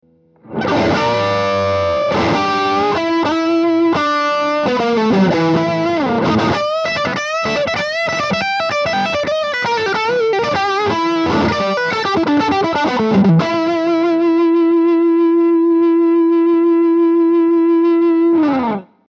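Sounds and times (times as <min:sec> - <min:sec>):
dirty rock lead guitar: 0:00.0 - 0:19.0.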